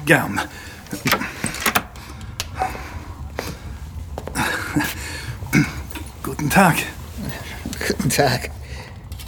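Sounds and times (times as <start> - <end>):
speech: 0.0 - 1.3, 4.8 - 5.0, 6.4 - 7.0, 8.0 - 8.6
door being handled and shut: 0.0 - 3.0.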